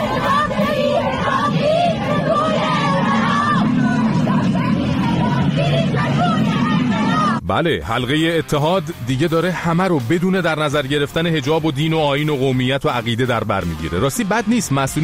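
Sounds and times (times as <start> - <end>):
dense babble of many people: 0.0 - 7.4
large crowd of protesters shouting slogans in a street in Sistan: 0.0 - 7.4
speech: 7.5 - 15.0.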